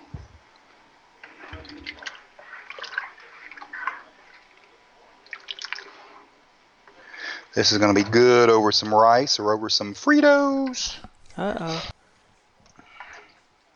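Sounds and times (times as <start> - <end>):
food being stirred in a cooking pot: 0.4 - 9.0
thick liquid sloshing: 1.2 - 6.4
speech: 7.6 - 11.9.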